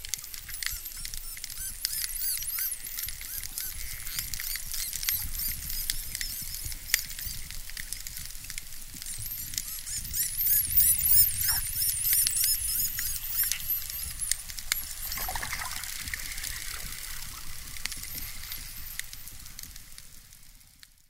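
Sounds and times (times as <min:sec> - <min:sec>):
dolphin clicks: 0:00.0 - 0:19.8
dolphin whistles: 0:00.6 - 0:07.4, 0:09.1 - 0:19.3
underwater hiss: 0:15.2 - 0:18.9.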